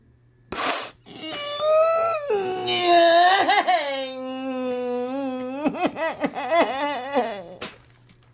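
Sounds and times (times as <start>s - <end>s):
woman wailing and sobbing in despair: 1.1s - 7.7s.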